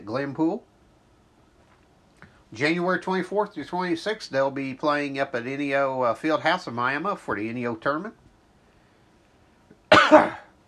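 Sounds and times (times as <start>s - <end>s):
speech: 0.1s - 0.7s, 2.5s - 8.2s
harsh raspy cough: 9.9s - 10.6s.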